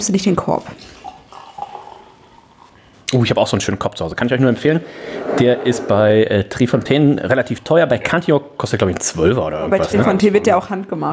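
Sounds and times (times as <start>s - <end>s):
speech: 0.0s - 1.0s, 3.1s - 11.1s
beer pouring into a glass: 0.9s - 2.7s.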